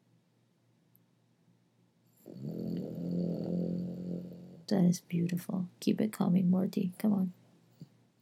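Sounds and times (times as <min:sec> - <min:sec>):
dog snoring: 0:02.2 - 0:04.7
speech: 0:04.7 - 0:07.4.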